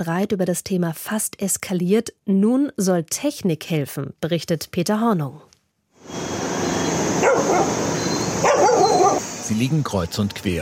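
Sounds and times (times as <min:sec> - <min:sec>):
speech: 0:00.0 - 0:05.5, 0:08.9 - 0:10.5
steady hiss of outdoor traffic noise: 0:06.0 - 0:10.5
street dogs barking and yelping: 0:07.1 - 0:09.5.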